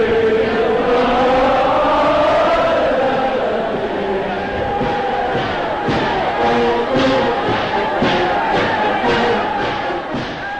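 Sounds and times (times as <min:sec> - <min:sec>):
dense crowd of many voices cheering and shouting: 0:00.1 - 0:10.5
thuds: 0:04.5 - 0:10.5.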